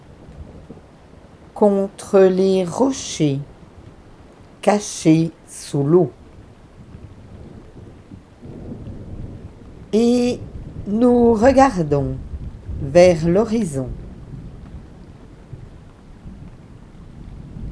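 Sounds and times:
low rumbling thunder over a beach: 0.0s - 1.6s, 6.1s - 17.7s
steady rain over a beach: 0.0s - 17.7s
speech: 1.6s - 3.5s, 4.6s - 6.2s, 9.9s - 14.0s.

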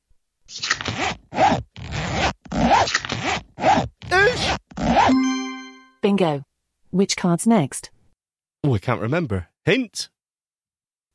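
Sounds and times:
clothing zipper being zipped: 0.5s - 5.2s
speech: 6.2s - 8.0s, 8.6s - 10.2s.

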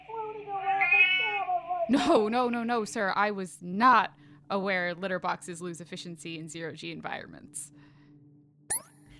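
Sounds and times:
several cats meowing insistently: 0.5s - 1.9s
speech: 1.9s - 7.8s.

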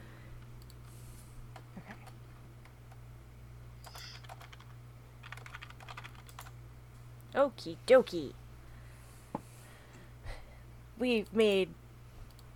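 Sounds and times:
computer keyboard being moved, clicking and clattering: 3.9s - 6.6s
speech: 7.4s - 8.4s, 11.0s - 11.8s.

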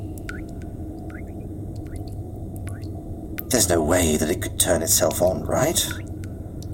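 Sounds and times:
low hum: 0.0s - 6.7s
faucet dripping water: 0.1s - 3.5s, 5.9s - 6.7s
speech: 3.5s - 6.1s.

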